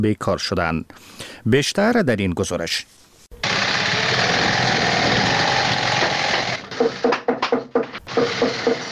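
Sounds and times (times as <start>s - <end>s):
speech: 0.0s - 3.0s
sewing machines whirring in a shoe factory workshop: 3.4s - 7.1s, 8.1s - 8.9s
tapping and clattering of hammering in a shoe factory: 4.4s - 8.9s.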